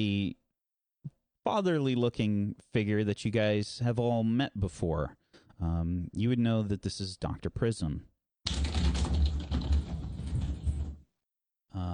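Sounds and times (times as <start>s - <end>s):
speech: 0.0s - 0.4s, 1.4s - 8.7s, 11.7s - 11.9s
computer keyboard typing: 8.5s - 11.0s.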